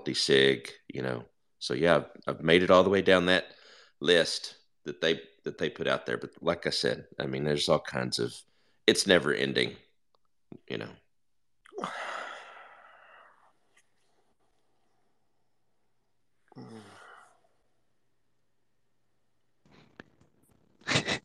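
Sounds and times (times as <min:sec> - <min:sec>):
speech: 0:00.1 - 0:09.8, 0:10.7 - 0:11.0, 0:11.8 - 0:12.1
person yawning with a drawn-out groan: 0:11.7 - 0:13.0, 0:16.5 - 0:17.4.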